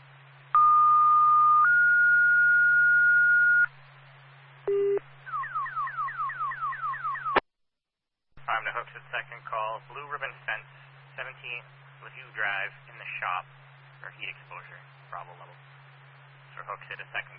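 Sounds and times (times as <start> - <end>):
faint hum: 0.0 - 7.4, 8.4 - 17.3
car alarm: 4.7 - 7.4
speech: 8.8 - 15.7, 16.6 - 17.3.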